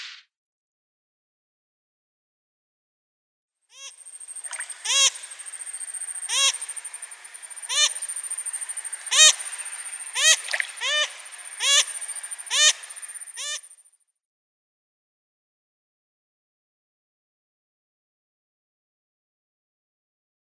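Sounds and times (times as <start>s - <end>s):
Striped Crake calling: 3.8s - 13.6s.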